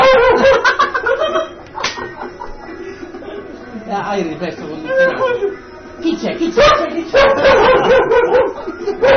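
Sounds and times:
laughter: 0:00.2 - 0:03.6, 0:07.3 - 0:09.1
dog yelping and whining: 0:04.8 - 0:05.6, 0:06.6 - 0:09.1.

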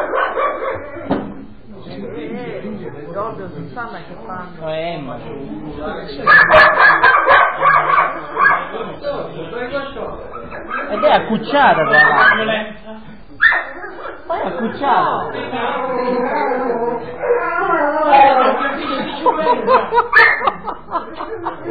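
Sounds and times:
dog barking: 0:00.0 - 0:01.1, 0:06.3 - 0:08.8, 0:10.3 - 0:12.6, 0:13.4 - 0:14.3, 0:19.9 - 0:20.6
speech: 0:03.2 - 0:07.4, 0:08.3 - 0:12.8, 0:14.4 - 0:17.1, 0:18.2 - 0:20.7
laughter: 0:14.0 - 0:21.6.

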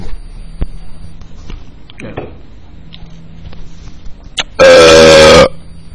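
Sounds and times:
shuffling noises: 0:01.2 - 0:01.8, 0:02.7 - 0:04.4
loud raspy burp close to the microphone: 0:04.4 - 0:05.6.

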